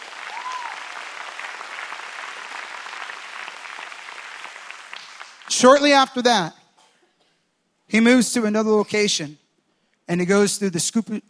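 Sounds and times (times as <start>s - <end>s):
crowd applauding: 0.0s - 6.0s
speech: 5.5s - 6.6s, 7.9s - 9.4s, 10.1s - 11.2s.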